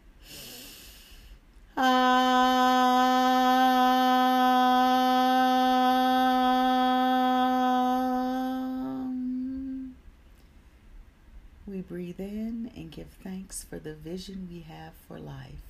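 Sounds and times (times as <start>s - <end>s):
breath in: 0.2s - 1.4s
person humming on the exhale: 0.2s - 10.0s
speech: 13.5s - 15.6s.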